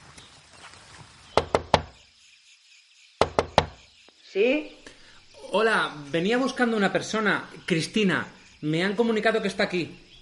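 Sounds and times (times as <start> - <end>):
knocking on a wooden cabin door: 1.4 - 2.0, 3.2 - 3.8
speech: 4.4 - 4.8, 5.5 - 10.0.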